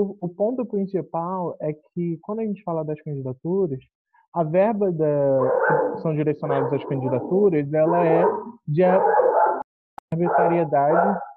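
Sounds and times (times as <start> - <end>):
speech: 0.0 - 9.2, 10.1 - 11.3
dogs barking: 5.4 - 9.6, 10.2 - 11.3.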